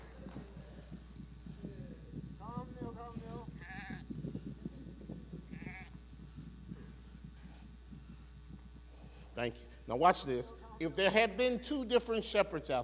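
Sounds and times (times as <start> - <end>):
steady low hum: 0.0 - 11.6
patter of many sheep hooves running: 0.0 - 12.8
flock of sheep bleating: 5.5 - 6.0
speech: 9.4 - 12.8.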